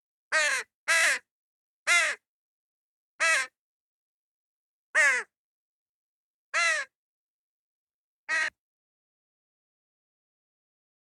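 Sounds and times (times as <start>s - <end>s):
crow cawing: 0.3s - 1.3s, 1.9s - 2.3s, 3.2s - 3.6s, 5.0s - 5.3s, 6.6s - 7.0s, 8.3s - 8.6s.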